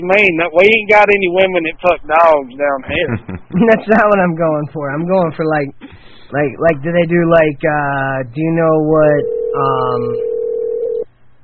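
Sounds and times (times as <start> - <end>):
speech: 0.0 - 10.3
laughter: 2.9 - 4.1
telephone being dialed with a steady electronic tone: 9.2 - 11.0.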